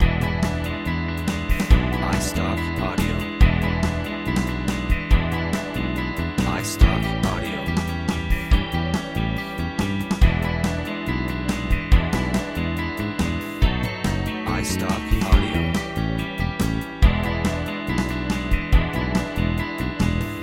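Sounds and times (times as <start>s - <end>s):
blues music loop: 0.0s - 20.4s.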